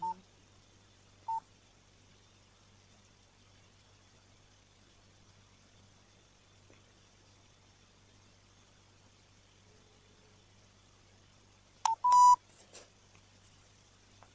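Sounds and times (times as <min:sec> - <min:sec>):
phone keypad beeps: 0:11.9 - 0:12.4.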